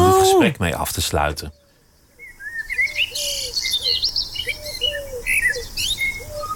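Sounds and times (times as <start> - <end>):
soft outdoor ambience: 0.0 - 6.5
speech: 0.4 - 1.6
common blackbird singing: 1.4 - 6.5
bird chirps: 1.5 - 6.5.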